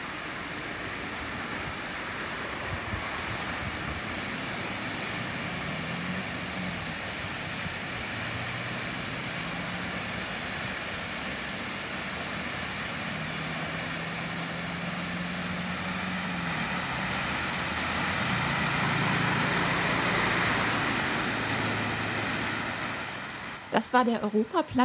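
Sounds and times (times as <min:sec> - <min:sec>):
large city fountain splashing: 0:00.0 - 0:24.7
cars passing: 0:00.0 - 0:24.8
traffic rumbling: 0:00.0 - 0:24.8
speech: 0:23.8 - 0:24.8.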